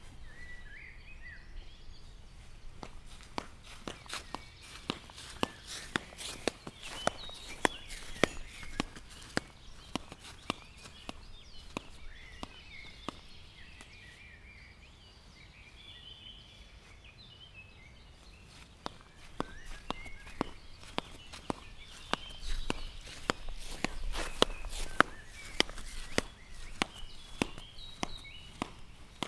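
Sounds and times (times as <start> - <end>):
slipper sounds, faster: 2.1 - 13.9, 18.2 - 29.2.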